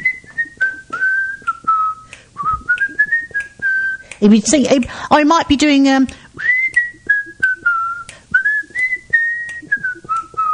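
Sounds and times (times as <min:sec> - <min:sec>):
person whistling a melody: 0:00.0 - 0:04.2, 0:06.4 - 0:10.5
speech: 0:04.2 - 0:06.2.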